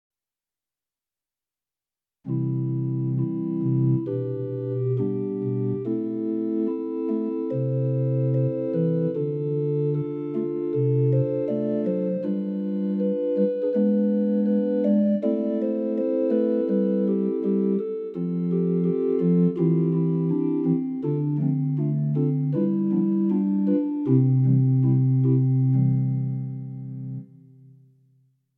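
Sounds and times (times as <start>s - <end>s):
church organ on a Roland FR-8X V-Accordion: 2.3s - 27.5s.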